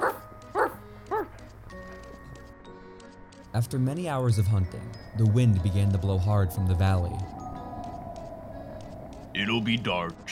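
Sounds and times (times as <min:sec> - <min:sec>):
hunting dogs barking: 0:00.0 - 0:01.4
speech: 0:03.6 - 0:07.4, 0:09.4 - 0:10.3.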